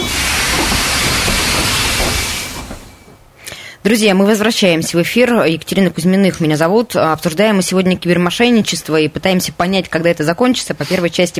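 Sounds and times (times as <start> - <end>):
metro train starting to move with rushing hiss and rumble: 0.0 - 3.4
speech: 3.8 - 11.3.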